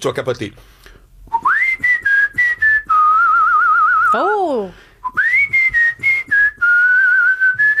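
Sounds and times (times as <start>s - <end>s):
speech: 0.0s - 1.4s, 4.1s - 5.2s
person whistling a song melody: 1.3s - 4.3s, 5.0s - 7.7s.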